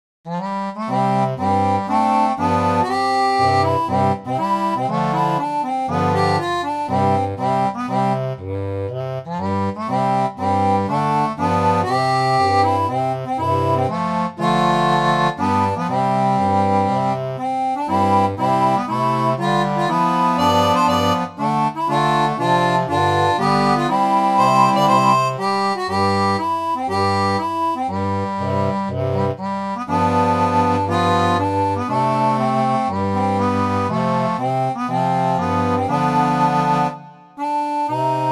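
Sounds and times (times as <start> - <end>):
barrel organ playing: 0.3 - 38.3.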